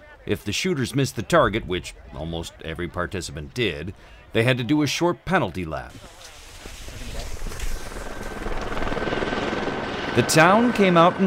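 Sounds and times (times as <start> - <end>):
speech: 0.2 - 6.3, 10.2 - 11.2
helicopter flying overhead: 7.2 - 11.2.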